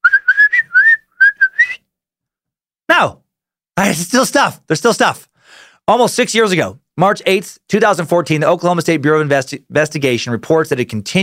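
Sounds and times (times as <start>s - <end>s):
short bright whistled tune: 0.0s - 1.9s
speech: 3.0s - 3.2s, 3.8s - 11.2s.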